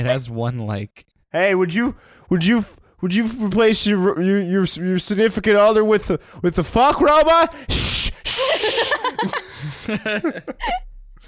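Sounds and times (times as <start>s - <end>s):
speech: 0.0s - 8.4s, 9.2s - 10.8s
person shushing: 7.5s - 9.1s
laughter: 8.2s - 10.9s.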